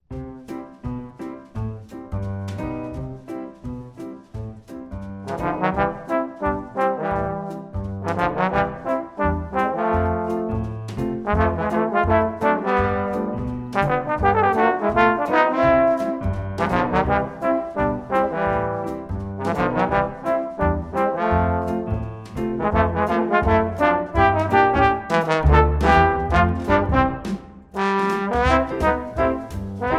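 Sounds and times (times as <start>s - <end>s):
trombone playing a Christmas tune: 5.3s - 10.6s, 11.3s - 21.9s, 22.6s - 29.9s.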